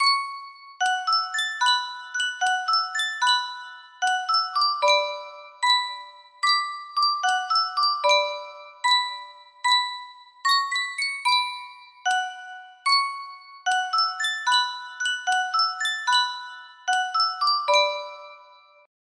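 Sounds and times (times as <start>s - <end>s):
music box: 0.0s - 18.9s.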